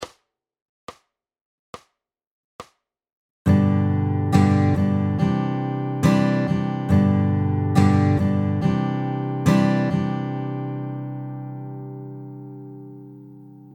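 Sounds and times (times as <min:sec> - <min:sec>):
varying strum patterns with accents: 0:03.5 - 0:13.7.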